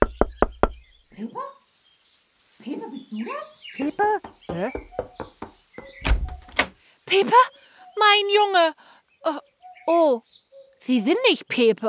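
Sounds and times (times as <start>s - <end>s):
firm knocking on a door: 0.0s - 0.9s, 4.2s - 6.4s
speech: 1.2s - 1.5s, 2.6s - 5.0s, 7.1s - 11.8s
person calling out: 3.8s - 4.8s.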